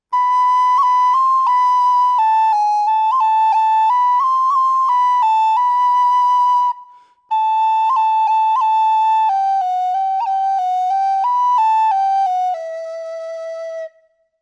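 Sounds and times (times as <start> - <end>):
traditional Galician pito playing: 0.0 - 14.2.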